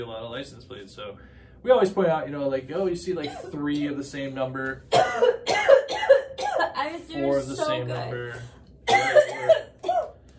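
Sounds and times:
speech: 0.0 - 5.8, 6.8 - 9.6
person coughing: 3.2 - 3.7, 4.9 - 6.8, 8.9 - 10.2.

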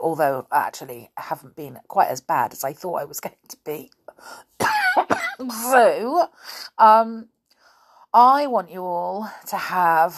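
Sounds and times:
speech: 0.0 - 4.8, 5.4 - 7.3, 8.1 - 10.1
person coughing: 4.6 - 5.6.

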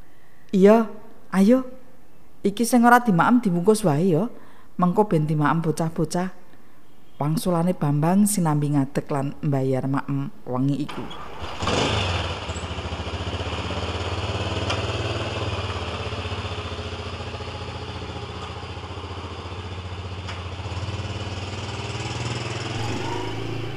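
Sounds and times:
speech: 0.5 - 1.8, 2.4 - 6.4, 7.2 - 12.0
motorcycle engine starting and driving off: 11.0 - 23.7.

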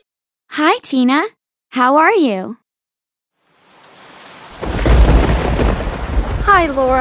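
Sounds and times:
speech: 0.6 - 2.6, 6.5 - 6.9
rain-like hiss: 3.4 - 6.9
thunder rumbling during a thunderstorm: 4.5 - 6.9.

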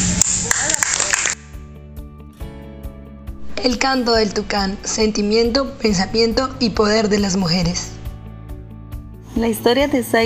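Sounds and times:
dense burst of applause with many overlapping claps: 0.2 - 1.4
speech: 3.6 - 7.9, 9.4 - 10.2.

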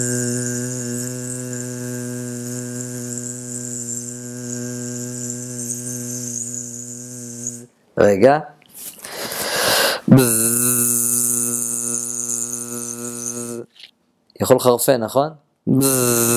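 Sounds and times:
voice imitating a mosquito with a long steady buzzing zzz: 0.0 - 7.7, 9.9 - 13.8, 15.7 - 16.3
speech: 8.0 - 8.5, 10.1 - 10.4, 14.4 - 16.3.

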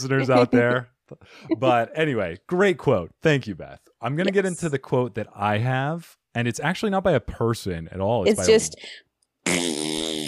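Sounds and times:
speech: 0.0 - 10.0
loud buzzy fart blown into a microphone: 9.4 - 10.2.

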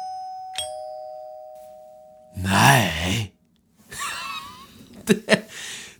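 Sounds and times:
doorbell chiming as a guest arrives: 0.0 - 2.3
laughter: 3.9 - 5.6.

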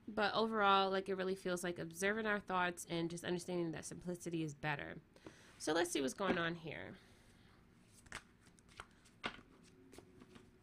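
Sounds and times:
speech: 0.2 - 7.1
African tarot cards being handled and shuffled: 7.8 - 10.6.

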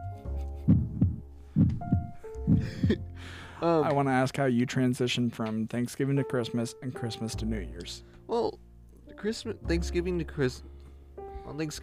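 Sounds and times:
heartbeat thumping in double beats: 0.6 - 3.1
speech: 2.5 - 8.6, 9.2 - 10.7, 11.5 - 11.8.

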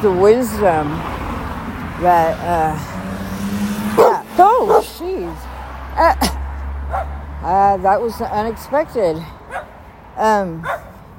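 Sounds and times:
speech: 0.0 - 1.2, 2.0 - 3.1, 4.0 - 6.4, 7.4 - 9.4, 10.2 - 10.8
dogs yipping and whining: 4.0 - 5.0.

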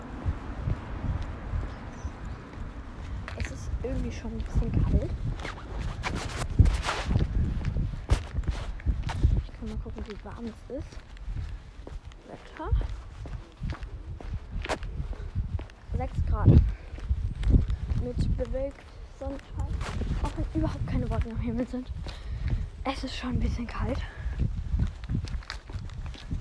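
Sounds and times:
footsteps on a hard street surface outdoors in slightly cold weather: 0.0 - 26.4
speech: 3.9 - 6.3, 9.6 - 11.1, 16.0 - 16.7, 18.1 - 19.8, 20.5 - 22.2, 22.8 - 24.5.

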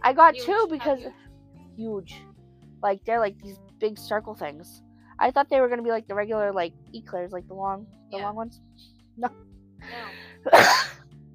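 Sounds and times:
speech: 0.1 - 10.9
person coughing harshly: 10.5 - 11.0.

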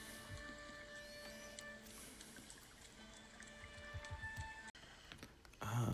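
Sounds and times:
rushing river water: 0.0 - 4.7
speech: 5.8 - 5.9.

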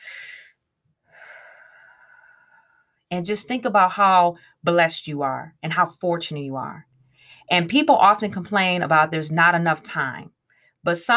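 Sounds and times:
deep breath: 0.0 - 3.0, 7.1 - 7.5
speech: 3.1 - 6.9, 7.5 - 11.1.

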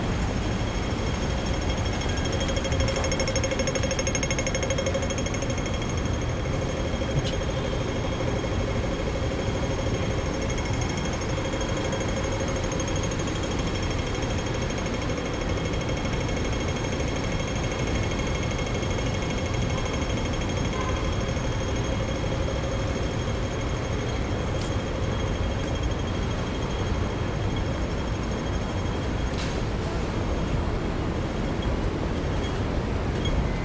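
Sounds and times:
faint high whines and tones: 0.0 - 30.5
traffic roar on a busy city road: 0.0 - 33.6.

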